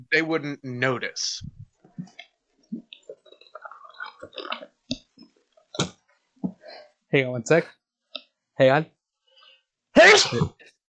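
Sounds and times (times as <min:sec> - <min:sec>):
speech: 0:00.1 - 0:01.6, 0:07.1 - 0:07.8, 0:08.6 - 0:09.0, 0:10.0 - 0:10.6
person sneezing: 0:10.0 - 0:10.5.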